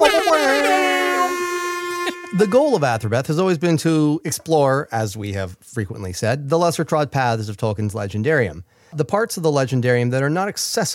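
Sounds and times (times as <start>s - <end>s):
loud sustained air horn blast: 0.0s - 2.8s
speech: 2.4s - 10.9s.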